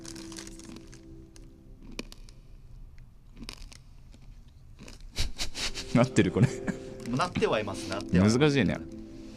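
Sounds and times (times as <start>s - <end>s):
chewing crunchy candy-coated gummy candy: 0.0s - 2.4s, 3.2s - 5.2s
speech: 6.0s - 8.9s.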